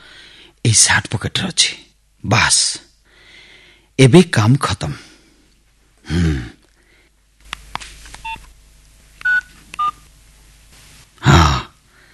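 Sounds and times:
speech: 0:00.7 - 0:02.8, 0:04.0 - 0:05.1, 0:06.1 - 0:06.6
telephone keypad tones as a number is dialed: 0:09.2 - 0:10.0.

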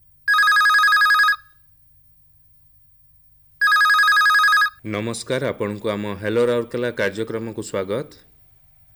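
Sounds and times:
telephone ringing with a bright trilling electronic ring for an incoming call: 0:00.3 - 0:01.6, 0:03.6 - 0:04.8
speech: 0:04.8 - 0:08.3.

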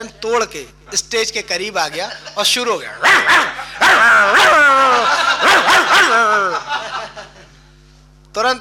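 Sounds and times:
speech: 0:00.0 - 0:07.2, 0:08.4 - 0:08.5
laughter: 0:01.8 - 0:02.6, 0:03.4 - 0:07.6
dog yipping and barking on a stage during a performance: 0:03.0 - 0:04.6, 0:05.4 - 0:06.2
dog whining and yelping: 0:03.0 - 0:06.3.

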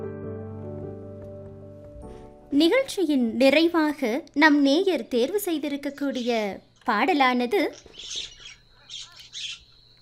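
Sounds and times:
speech: 0:02.5 - 0:08.3
myna bird squawks: 0:07.7 - 0:09.7.

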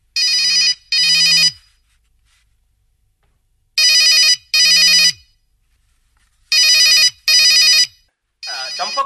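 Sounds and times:
telephone bell ringing in double rings: 0:00.2 - 0:01.6, 0:03.8 - 0:05.2, 0:06.5 - 0:09.0.

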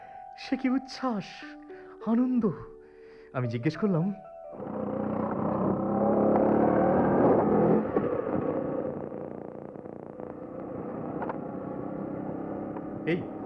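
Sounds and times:
speech: 0:00.5 - 0:05.0, 0:13.1 - 0:13.3
motorcycle engine droning while riding along a road with rider and passenger: 0:04.4 - 0:13.4.

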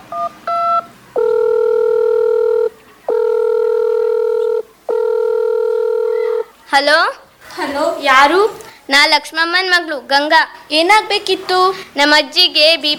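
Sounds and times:
telephone keypad tones dialing a call to a doctor: 0:00.1 - 0:06.4
speech: 0:06.7 - 0:12.9.

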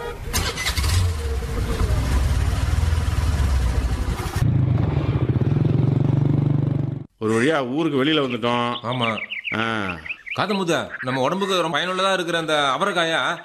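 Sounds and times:
vehicle engine starting: 0:00.1 - 0:06.0
speech: 0:07.5 - 0:13.4.

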